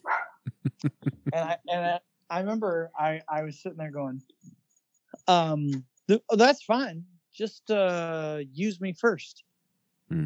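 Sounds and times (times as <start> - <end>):
dog barking in short sharp yaps and whining barks: 0.0 - 0.4
laughter: 0.5 - 1.6
speech: 0.8 - 4.4, 5.3 - 9.5.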